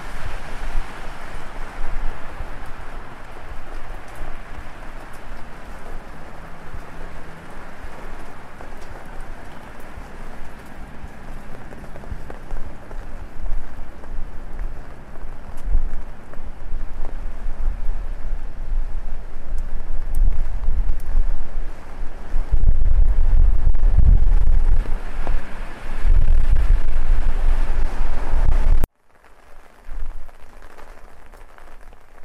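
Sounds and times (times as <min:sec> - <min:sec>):
city traffic hum in downtown Korea at night: 0:00.0 - 0:28.9
rain pattering on an umbrella in a downtown Korean city at night: 0:00.0 - 0:32.2.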